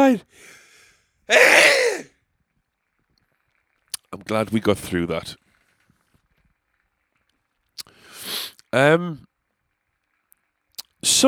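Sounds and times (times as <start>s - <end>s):
speech: 0.0s - 0.6s, 1.3s - 2.1s, 4.1s - 5.4s, 8.7s - 9.3s, 11.0s - 11.2s
loud sneeze: 1.3s - 2.1s.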